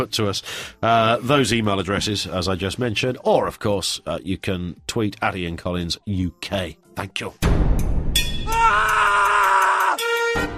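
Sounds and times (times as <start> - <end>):
speech: 0.0 - 7.8
loud drawn-out high-pitched scream played as a produced jingle: 8.2 - 10.5.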